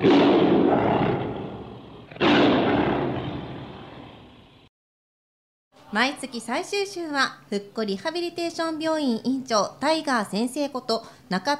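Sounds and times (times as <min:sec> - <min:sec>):
tiger roaring: 0:00.0 - 0:04.5
speech: 0:05.9 - 0:11.5.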